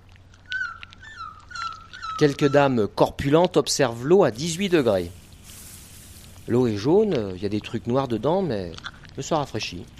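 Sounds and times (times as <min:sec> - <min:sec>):
low hum: 0:00.0 - 0:09.9
dog whimpering in a thin high whine: 0:00.5 - 0:02.8
speech: 0:02.2 - 0:05.2, 0:06.5 - 0:09.9.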